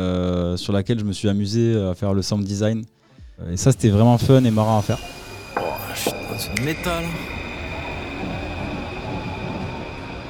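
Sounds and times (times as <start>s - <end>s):
speech: 0.1s - 5.2s, 6.0s - 7.4s
metro train rolling along the rails: 3.8s - 10.2s.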